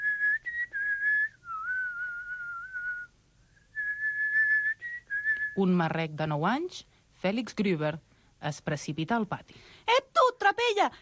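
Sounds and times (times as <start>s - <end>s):
priest whistling a melodic tune while walking through a cloister: 0.0s - 5.6s
speech: 5.6s - 10.0s, 10.6s - 10.9s.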